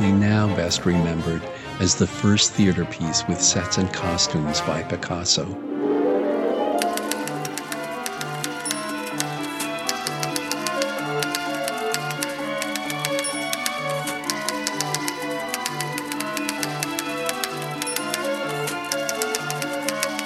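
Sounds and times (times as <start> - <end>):
sustained orchestral ballet music: 0.0 - 20.2
speech: 0.4 - 5.7
typewriter keys clacking as an instrument in orchestral ballet music: 6.8 - 20.2.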